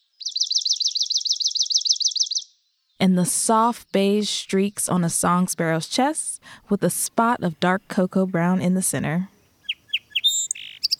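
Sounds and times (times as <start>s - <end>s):
swamp sparrow song: 0.0s - 2.6s, 9.4s - 10.9s
speech: 3.0s - 9.3s.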